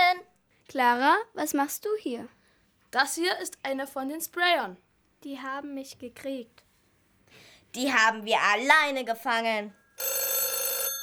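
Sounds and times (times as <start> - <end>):
speech: 0.7 - 6.6, 7.3 - 10.2
telephone ringing with bright electronic tone: 9.9 - 11.0.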